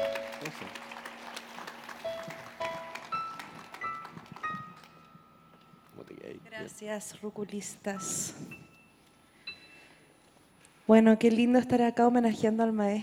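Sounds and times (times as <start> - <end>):
audience applause: 0.0 - 5.1
speech: 0.4 - 0.8, 6.6 - 8.6, 10.9 - 13.0.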